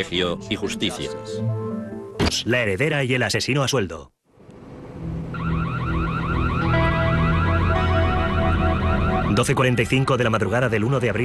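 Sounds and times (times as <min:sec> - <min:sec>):
speech: 0:00.0 - 0:01.6, 0:02.3 - 0:04.2, 0:09.3 - 0:11.2
electronic burglar alarm at Lincoln Hill Estates in Paradise Valley Arizona: 0:05.3 - 0:10.4.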